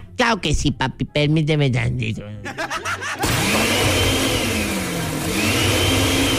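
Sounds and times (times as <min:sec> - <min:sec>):
speech: 0:00.2 - 0:04.0
laughter: 0:02.4 - 0:03.8
kitchen blender motor running: 0:03.2 - 0:06.3.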